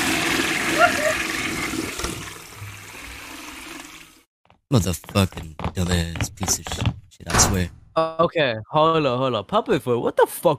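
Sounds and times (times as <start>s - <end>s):
toilet flushing: 0.0s - 4.3s
speech: 4.7s - 10.5s.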